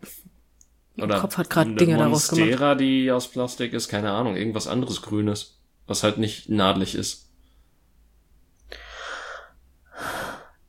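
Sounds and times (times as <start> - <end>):
speech: 1.0 - 7.3
heavy breathing into a microphone: 8.7 - 10.6.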